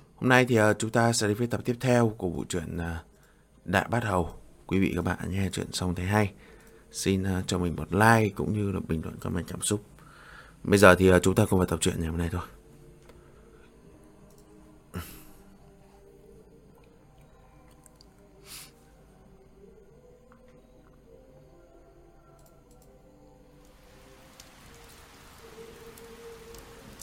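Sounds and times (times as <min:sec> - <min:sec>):
speech: 0:00.2 - 0:03.1, 0:03.7 - 0:09.9, 0:10.6 - 0:12.6
heavy rain falling on an old crumbling tiled roof: 0:23.7 - 0:27.0.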